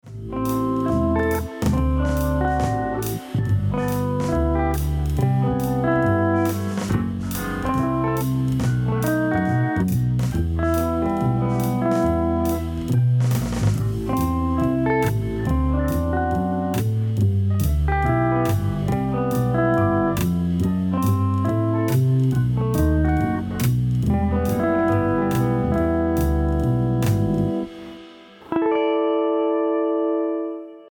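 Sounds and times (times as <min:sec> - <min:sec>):
jazz chords: 0:00.0 - 0:30.8.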